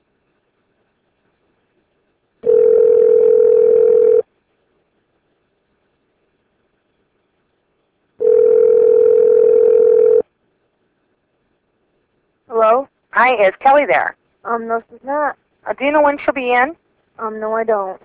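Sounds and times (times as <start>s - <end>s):
telephone line tone during a redial: 2.4s - 4.2s, 8.2s - 10.2s
speech: 13.3s - 18.0s.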